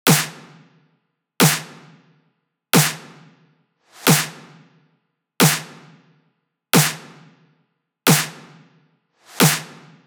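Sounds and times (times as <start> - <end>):
trap snare drum loop: 0.0 - 0.8, 1.4 - 2.1, 2.8 - 3.4, 4.0 - 4.8, 5.4 - 6.2, 6.8 - 7.4, 8.1 - 10.0.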